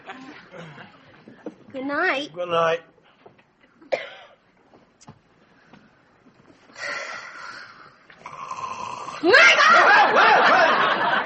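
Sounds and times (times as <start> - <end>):
speech: 1.8 - 2.9, 9.2 - 9.4
man snoring in bed: 8.2 - 9.2
laughter: 9.3 - 11.2.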